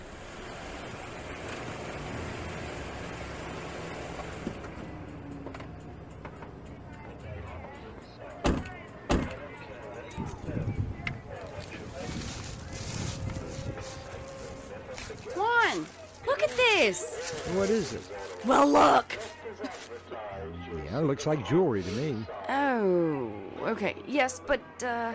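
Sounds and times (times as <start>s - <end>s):
car engine humming as it rolls in and idles: 0.0s - 20.2s
car door thuds: 8.4s - 9.4s
rustling and shuffling movement: 11.3s - 20.1s
speech: 17.6s - 19.2s, 21.0s - 25.1s.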